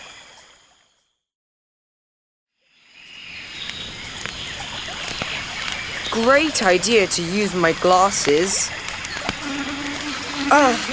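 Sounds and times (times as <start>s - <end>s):
speech: 6.2s - 8.8s, 10.5s - 10.9s
mosquito buzzing by a woodland riverbank: 7.2s - 10.9s
brief wavering vocal sound: 9.4s - 10.9s.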